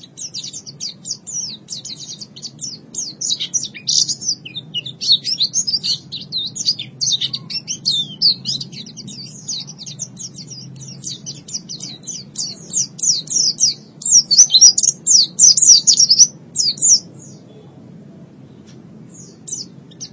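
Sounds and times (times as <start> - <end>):
white-eye song: 0.0 - 17.6, 18.5 - 20.1
low background hum: 0.0 - 20.1.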